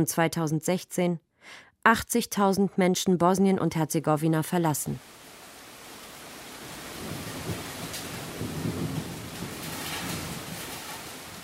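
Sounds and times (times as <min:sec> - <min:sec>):
speech: 0:00.0 - 0:05.2
heavy rain: 0:05.0 - 0:11.4.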